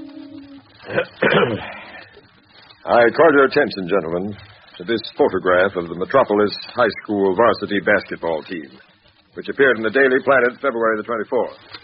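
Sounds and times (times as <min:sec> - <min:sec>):
man clearing his throat: 0:00.8 - 0:01.8
speech: 0:00.9 - 0:01.8, 0:02.9 - 0:11.8.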